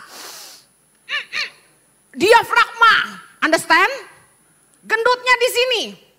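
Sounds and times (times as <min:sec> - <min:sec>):
breathy hiss of air pushed out through the mouth in a breathing exercise: 0:00.0 - 0:00.8
short squeaky vocal sounds: 0:01.1 - 0:01.7
speech: 0:02.2 - 0:04.1, 0:04.8 - 0:06.0.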